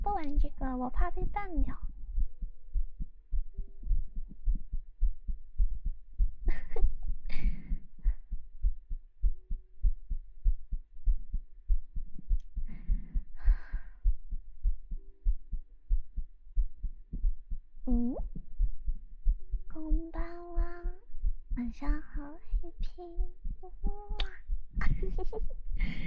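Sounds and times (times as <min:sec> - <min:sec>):
heartbeat: 0:00.0 - 0:26.0
speech: 0:00.2 - 0:01.9.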